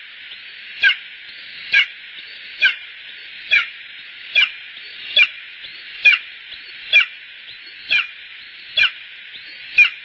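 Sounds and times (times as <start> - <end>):
steady hiss: 0.0 - 10.0
Bonelli's eagle brief piercing yelps: 0.8 - 1.1, 1.7 - 2.9, 3.5 - 10.0.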